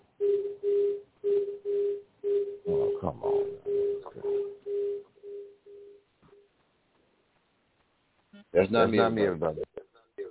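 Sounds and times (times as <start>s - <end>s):
low steady telephone tone beeps: 0.2s - 6.0s
speech: 8.6s - 9.6s.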